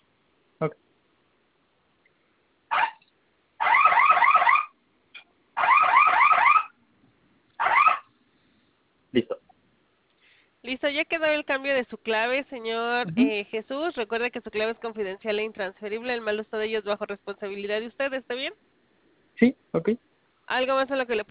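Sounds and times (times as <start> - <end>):
speech: 0.6 - 0.9, 10.8 - 18.7, 19.4 - 21.2
home security panel fire alarm warbling: 2.7 - 4.8, 5.6 - 6.8, 7.6 - 8.1.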